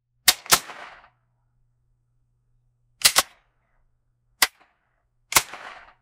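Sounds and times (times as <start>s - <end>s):
shotgun firing: 0.3s - 1.2s, 3.0s - 3.4s, 5.3s - 6.0s.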